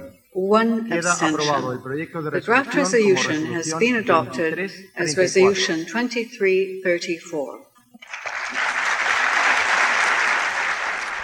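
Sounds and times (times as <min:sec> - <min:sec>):
speech: 0:00.4 - 0:07.7
UN Security Council members applauding after a vote: 0:08.0 - 0:11.2.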